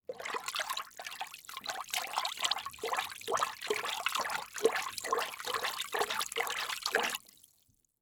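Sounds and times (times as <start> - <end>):
hands splashing water in a plastic bucket: 1.6 - 7.3.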